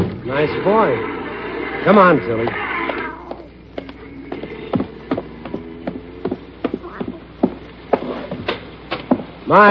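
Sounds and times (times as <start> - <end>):
low hum: 0.0 - 9.6
speech: 0.3 - 1.2, 1.8 - 2.8, 9.5 - 9.6
cat meowing: 2.5 - 3.5.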